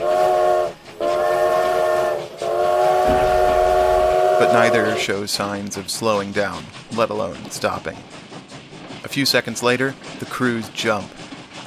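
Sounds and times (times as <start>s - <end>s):
steam locomotive whistles blowing: 0.0s - 5.1s
heavy rumble of a train roaring: 0.0s - 11.6s
speech: 4.4s - 8.3s, 9.1s - 11.6s.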